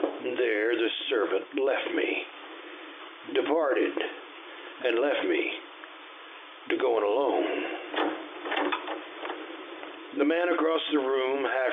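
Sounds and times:
speech: 0.4 - 2.4, 3.2 - 4.2, 4.8 - 5.6, 6.6 - 8.1, 10.1 - 11.7
wooden door scraping and creaking open: 7.9 - 9.0.

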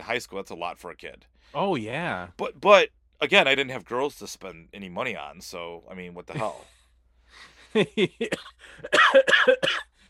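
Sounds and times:
speech: 0.1 - 9.9
person coughing with harsh hacking bursts: 8.2 - 10.0.

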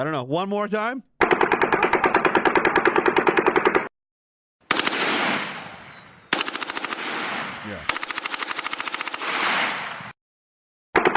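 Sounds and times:
speech: 0.0 - 1.1
automatic gunfire from a 30-round magazine: 1.2 - 3.9, 4.7 - 5.6, 6.3 - 10.2, 11.0 - 11.1.

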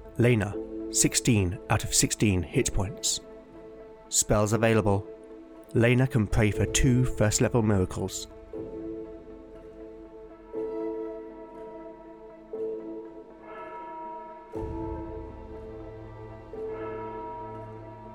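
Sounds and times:
speech: 0.2 - 3.3, 4.1 - 5.1, 5.7 - 8.7
church bell tolling in town streets at dawn: 13.3 - 18.1.

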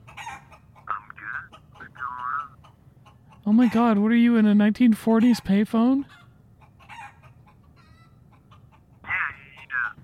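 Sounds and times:
chicken squawk: 0.0 - 3.9, 6.1 - 9.8
chickens clucking: 0.0 - 10.0
speech: 3.4 - 6.2.

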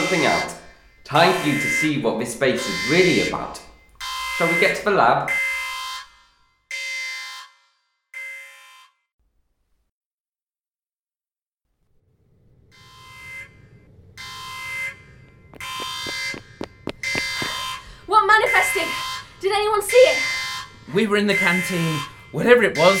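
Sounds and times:
harsh base alarm blaring: 0.0 - 9.0, 12.7 - 22.9
speech: 0.1 - 3.7, 4.4 - 5.4, 21.0 - 22.9
rumbling background: 11.9 - 21.4.

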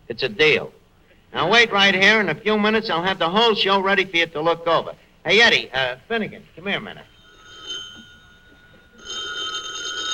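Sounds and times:
speech: 0.1 - 7.1
telephone bell ringing: 7.1 - 10.1.

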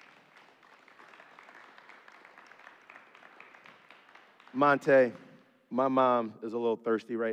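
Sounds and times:
large crowd applauding: 0.0 - 5.4
speech: 4.5 - 7.3.

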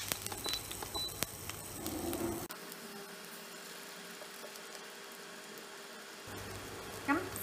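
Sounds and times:
egg white frying in olive oil in a pan: 0.0 - 7.4
faint hum: 0.0 - 7.4.

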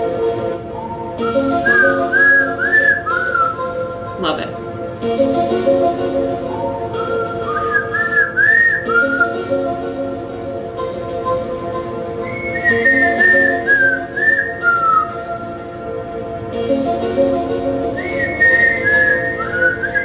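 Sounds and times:
steady musical backing: 0.0 - 20.0
person whistling a TV show opening theme song: 1.2 - 4.0, 6.9 - 9.7, 12.2 - 15.6, 17.8 - 20.0
speech: 4.2 - 6.2.

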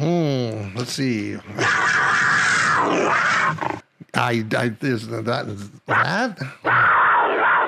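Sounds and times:
speech: 0.8 - 2.1, 2.8 - 6.8
mountain lion screeching and yowling: 1.5 - 3.8, 5.9 - 7.6.

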